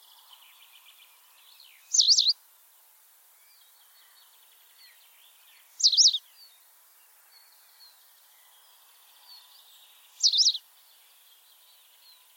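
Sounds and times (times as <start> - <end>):
white wagtail calling with sharp high chirps: 1.9 - 2.3, 10.2 - 10.6.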